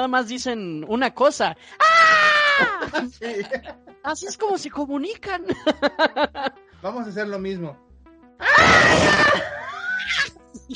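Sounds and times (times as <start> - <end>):
speech: 0.0 - 7.8, 8.4 - 10.7
laughter: 2.4 - 4.0, 5.4 - 6.6
human voice imitating creepy screams: 8.4 - 10.3.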